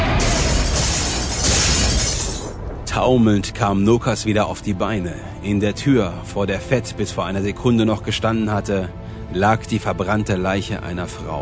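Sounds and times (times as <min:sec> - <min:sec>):
glass ceiling light tubes bursting in a hallway: 0:00.0 - 0:02.6
speech: 0:03.0 - 0:11.4.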